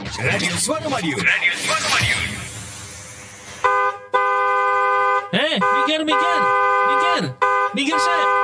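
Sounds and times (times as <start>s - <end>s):
speech: 0.2s - 2.3s, 7.2s - 8.4s
car horn honking at someone on a road: 3.6s - 8.4s.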